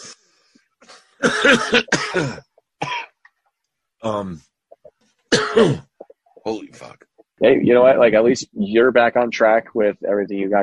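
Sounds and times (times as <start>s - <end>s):
harsh throaty coughing fit: 1.2s - 3.2s, 5.3s - 6.0s
speech: 1.3s - 2.5s, 4.0s - 4.5s, 5.6s - 10.6s.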